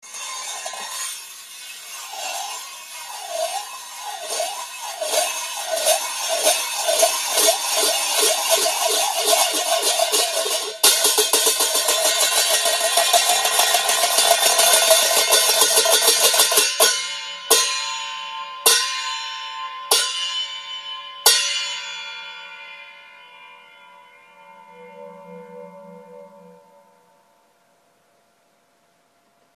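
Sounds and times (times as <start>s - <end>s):
hand cymbals: 0.0s - 27.4s.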